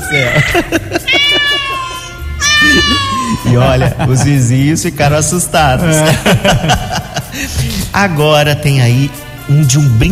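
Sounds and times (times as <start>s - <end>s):
cats meowing: 0.0s - 4.2s
speech: 0.1s - 1.0s, 3.5s - 10.1s
laughter: 0.1s - 4.9s, 5.6s - 8.0s.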